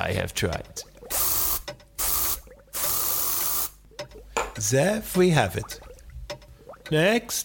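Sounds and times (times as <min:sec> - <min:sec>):
speech: 0:00.1 - 0:00.9, 0:04.6 - 0:05.9, 0:06.9 - 0:07.4
aerosol can spraying flea spray: 0:01.1 - 0:03.7.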